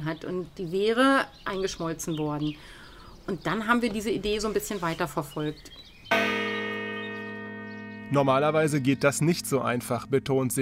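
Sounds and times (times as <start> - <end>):
speech: 0.0 - 6.4, 8.1 - 10.5
large church bell two meters high ringing in a garden: 6.1 - 10.5.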